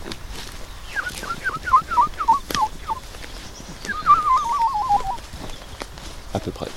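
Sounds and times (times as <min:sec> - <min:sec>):
faint noise: 0:00.0 - 0:06.7
person whistling an imitation of woodlark song: 0:00.9 - 0:03.0, 0:03.8 - 0:05.2.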